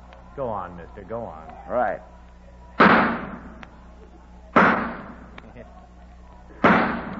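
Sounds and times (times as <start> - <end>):
faint low hum: 0.0 - 7.1
speech: 0.4 - 2.2
gunshots fired at a target: 2.8 - 3.6, 4.6 - 5.3, 6.6 - 7.1.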